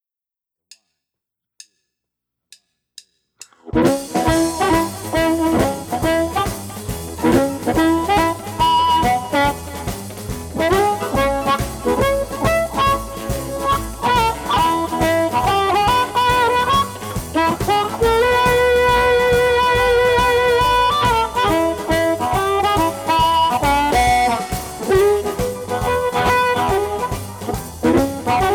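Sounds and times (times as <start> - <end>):
guitar amplifier: 3.7 - 28.5.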